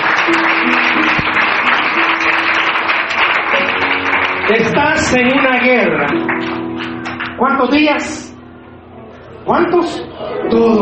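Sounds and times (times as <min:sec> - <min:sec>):
audience applauding: 0:00.0 - 0:08.3
speech: 0:05.0 - 0:06.4, 0:07.4 - 0:08.2, 0:09.5 - 0:10.8.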